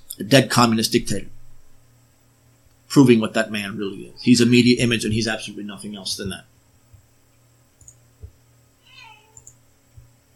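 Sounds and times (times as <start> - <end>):
low hum: 0.0 - 10.3
speech: 0.2 - 1.3, 2.9 - 6.5
cat meowing: 8.8 - 9.5.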